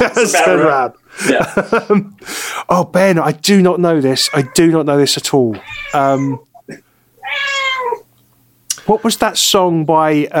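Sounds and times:
laughter: 0.0s - 2.2s
speech: 0.0s - 7.5s, 8.9s - 10.3s
cat giving a drawn-out wavering meow: 4.2s - 4.7s, 5.5s - 6.5s, 7.2s - 8.1s.

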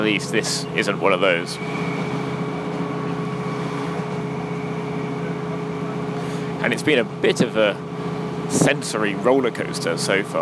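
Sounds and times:
speech: 0.0s - 2.0s, 6.6s - 7.9s, 8.5s - 10.4s
Northern Rail Sprinter passenger train running on rails: 0.0s - 7.5s.

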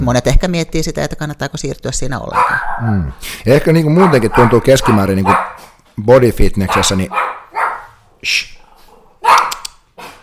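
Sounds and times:
speech: 0.0s - 7.4s, 8.2s - 8.6s, 9.2s - 10.1s
dog barking: 2.3s - 3.0s, 4.0s - 5.8s, 6.6s - 8.0s, 8.8s - 10.2s.

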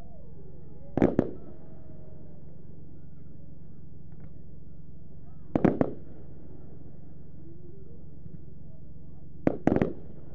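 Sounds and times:
low rumble: 0.0s - 10.3s
25-shot 25mm fan cake firework firing rows of shots: 0.9s - 1.5s, 5.4s - 6.8s, 9.4s - 10.3s.

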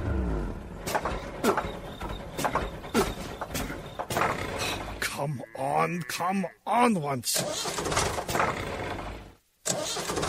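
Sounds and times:
tractor engine cranking and starting: 0.0s - 5.0s, 7.3s - 10.2s
speech: 1.5s - 1.8s, 5.2s - 8.9s.

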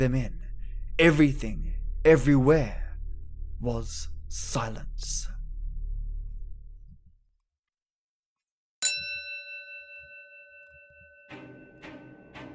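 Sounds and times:
speech: 0.0s - 0.4s, 1.0s - 2.8s, 3.6s - 5.3s
low rumble: 0.0s - 7.3s
hanging bell ringing outside pub door: 8.8s - 12.5s.

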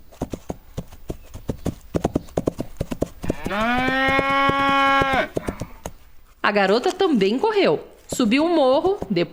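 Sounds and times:
angry cow hoofbeats galloping: 0.0s - 6.2s, 6.8s - 9.3s
angry cow mooing: 3.2s - 5.8s
speech: 3.5s - 4.6s, 6.5s - 9.3s.

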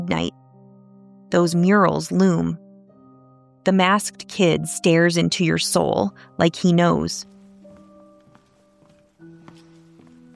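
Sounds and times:
speech: 0.1s - 0.4s, 1.3s - 2.6s, 3.6s - 7.3s
footsteps on a hard floor: 7.2s - 10.3s.

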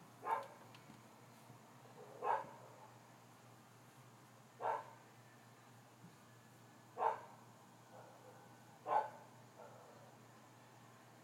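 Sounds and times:
dogs barking at night: 0.2s - 0.7s, 1.9s - 3.1s, 4.6s - 5.1s, 6.9s - 10.2s.

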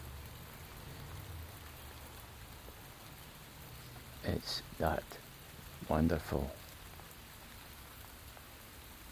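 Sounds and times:
steady rain falling straight down: 0.0s - 9.0s
speech: 4.2s - 5.2s, 5.9s - 6.6s.

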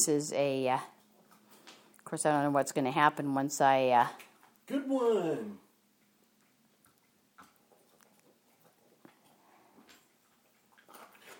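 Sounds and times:
speech: 0.0s - 1.0s, 2.1s - 5.6s
female dog crunching dry kibble: 6.0s - 11.3s.

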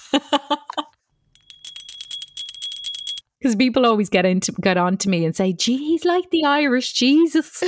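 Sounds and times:
speech: 0.1s - 0.4s, 3.4s - 7.6s
small hand bell ringing: 1.4s - 3.2s.

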